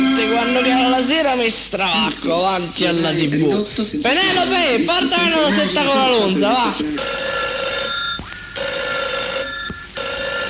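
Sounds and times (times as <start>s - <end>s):
telephone bell ringing: 0.0s - 1.1s, 7.0s - 10.4s
speech: 0.4s - 7.5s.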